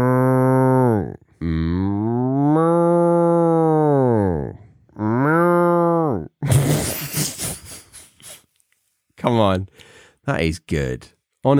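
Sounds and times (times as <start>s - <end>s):
person imitating a cow with long drawn-out moos: 0.0s - 6.4s
person laughing with noisy breathy sound: 6.4s - 8.5s
speech: 9.4s - 11.5s.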